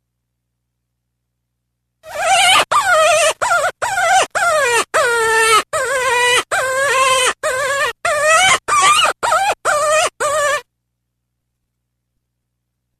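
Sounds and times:
cottontail rabbit squealing calls: 2.0s - 10.7s.

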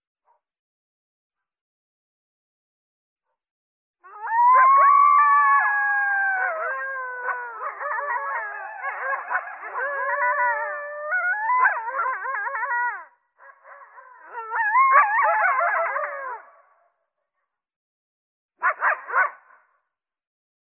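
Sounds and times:
coyotes howling: 4.0s - 16.6s.

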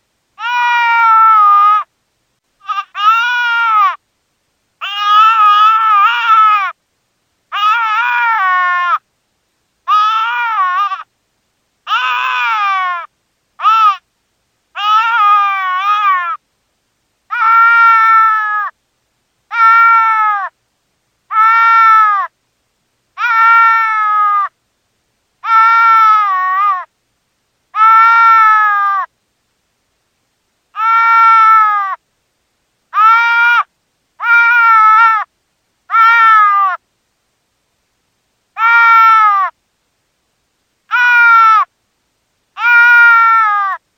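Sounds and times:
deer fawn distress call: 0.4s - 1.9s, 2.6s - 4.0s, 4.8s - 6.7s, 7.5s - 9.0s, 9.9s - 11.0s, 11.9s - 14.0s, 14.8s - 16.4s, 17.3s - 18.7s, 19.5s - 20.5s, 21.3s - 22.3s, 23.2s - 24.5s, 25.4s - 26.9s, 27.8s - 29.1s, 30.8s - 32.0s, 32.9s - 35.3s, 35.9s - 36.8s, 38.6s - 39.5s, 40.9s - 41.7s, 42.6s - 43.8s.

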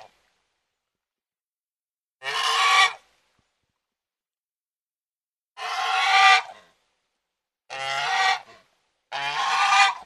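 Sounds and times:
domestic goose honking harshly: 5.6s - 6.5s, 7.7s - 8.5s, 9.1s - 10.0s.

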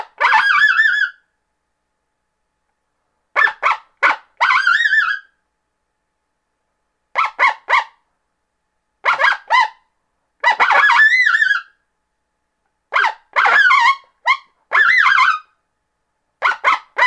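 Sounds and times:
coyote yipping: 0.0s - 1.2s, 3.4s - 5.3s, 7.2s - 8.0s, 9.0s - 9.8s, 10.4s - 11.8s, 12.9s - 15.5s, 16.4s - 17.0s.

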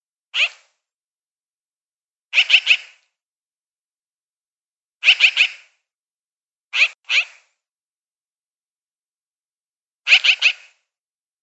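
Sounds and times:
magpie chattering with rough raspy notes: 2.4s - 3.0s, 5.0s - 5.6s, 6.8s - 7.4s, 10.1s - 10.7s.

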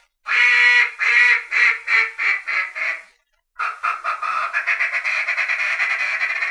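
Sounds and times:
mallard quacking: 0.3s - 6.4s.

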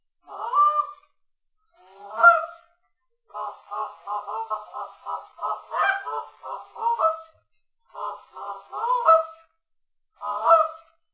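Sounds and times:
Canada goose giving nasal honks: 0.3s - 1.0s, 1.8s - 2.6s, 3.3s - 7.3s, 7.9s - 9.5s, 10.2s - 10.9s.

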